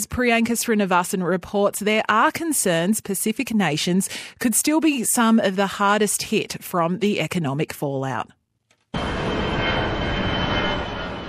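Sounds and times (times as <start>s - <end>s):
speech: 0.0s - 9.2s
jet aircraft flying overhead: 9.0s - 11.2s.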